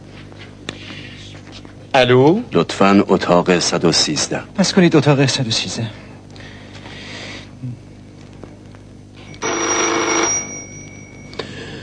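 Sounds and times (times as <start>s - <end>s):
speech: 2.0s - 6.0s
telephone ringing: 9.2s - 11.4s.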